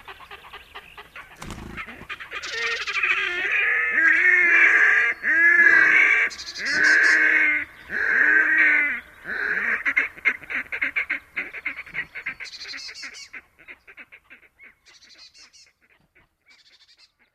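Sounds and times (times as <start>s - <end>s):
Red-necked Grebe rapid stuttering series of pulses: 1.4s - 2.1s
Red-necked Grebe calling with harsh braying wails: 1.5s - 10.1s.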